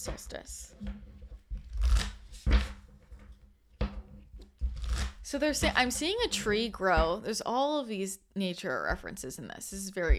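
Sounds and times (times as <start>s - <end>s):
speech: 0.0s - 1.1s, 5.3s - 10.1s
tarot cards being shuffled and drawn: 1.6s - 3.3s, 4.4s - 5.2s.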